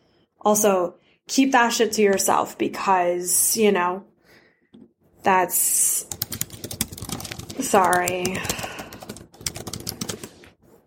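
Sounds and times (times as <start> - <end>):
speech: 0.4 - 4.1, 5.2 - 6.4, 7.6 - 8.6
typing keystrokes while answering a text message: 6.1 - 10.4.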